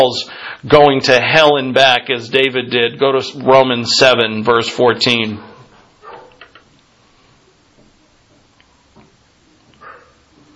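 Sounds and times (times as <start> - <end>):
speech: 0.0 - 5.5
hiss: 0.0 - 10.5
faint dogs barking: 5.4 - 6.5, 9.6 - 10.5.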